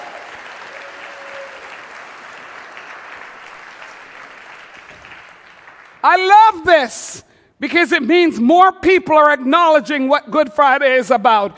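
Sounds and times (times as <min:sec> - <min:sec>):
large audience applauding: 0:00.0 - 0:06.0
speech: 0:06.0 - 0:11.5.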